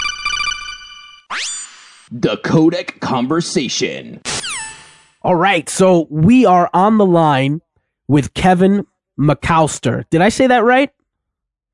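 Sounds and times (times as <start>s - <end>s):
loud electronic telephone ring warbling: 0.0s - 1.3s
speech: 2.1s - 4.4s, 5.2s - 11.0s.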